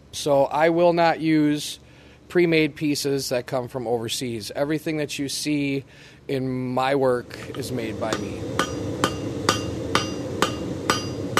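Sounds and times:
low hum: 0.0 - 11.3
speech: 0.1 - 8.8
blacksmith hammer clanging on hot metal on an anvil shaping a scroll: 7.5 - 11.3.

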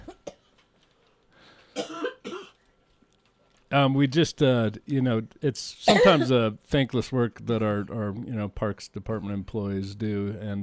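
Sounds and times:
harsh coughs: 1.8 - 2.6, 5.9 - 6.3
speech: 3.7 - 10.6.

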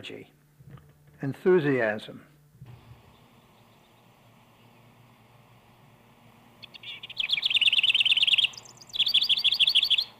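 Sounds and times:
speech: 0.0 - 2.3
house wren singing: 3.0 - 5.1, 6.5 - 10.1.

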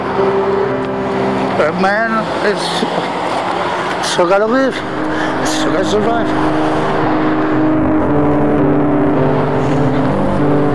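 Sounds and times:
loud steady street traffic: 0.0 - 10.7
speech: 1.6 - 7.0
car engine rumbling and revving: 2.2 - 10.7.

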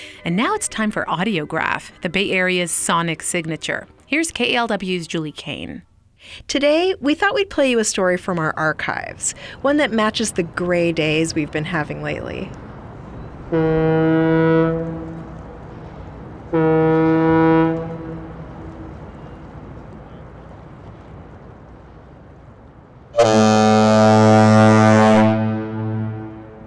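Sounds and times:
speech: 0.2 - 12.6, 13.5 - 15.1, 16.5 - 17.7, 23.2 - 24.2
bridge foghorns sounding during a test: 13.5 - 19.3, 23.2 - 26.6.

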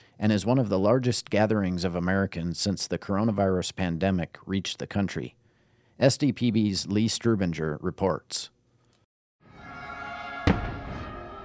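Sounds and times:
speech: 0.2 - 5.4, 6.0 - 8.6
music playing: 9.4 - 11.4
firework bursting with a boom: 10.4 - 11.4.

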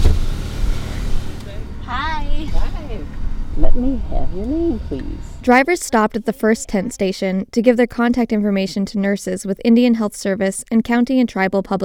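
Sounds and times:
car engine rumbling at drive-through testing site: 0.0 - 7.0
low road noise: 0.0 - 7.0
speech: 3.8 - 11.8.

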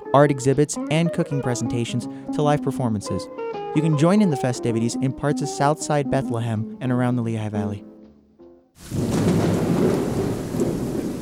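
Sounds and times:
speech: 0.1 - 7.9, 8.8 - 9.1
deep rumble of thunder rolling: 8.8 - 11.1
heavy rain pouring: 8.8 - 11.1.

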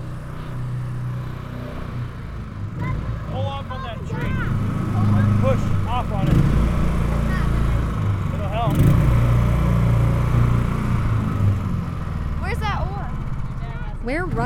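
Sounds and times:
airboat engine running through floodwaters: 0.0 - 14.4
voices: 2.6 - 9.5, 12.3 - 14.4.

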